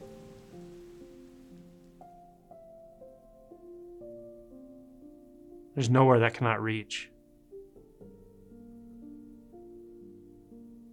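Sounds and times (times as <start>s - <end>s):
soft rain: 0.0s - 10.9s
speech: 5.8s - 7.1s.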